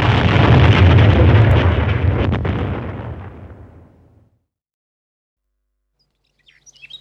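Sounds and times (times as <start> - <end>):
loud deep explosion of a capsule self-destructing: 0.0 - 4.3
faint bird chirps: 6.0 - 6.9.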